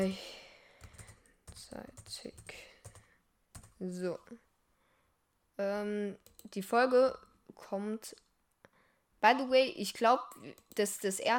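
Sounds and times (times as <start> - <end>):
speech: 0.0 - 0.4, 3.8 - 4.5, 5.6 - 8.2, 9.2 - 11.3
typing on a computer keyboard: 0.8 - 3.8, 6.2 - 6.6.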